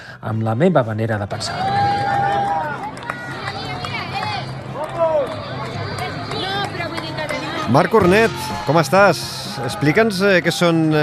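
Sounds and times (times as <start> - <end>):
speech: 0.2 - 1.7, 7.7 - 11.0
crowd chatter and cheering at a long-distance race finish line in San Sebastián: 1.1 - 11.0
people shouting: 1.5 - 3.5, 8.0 - 11.0.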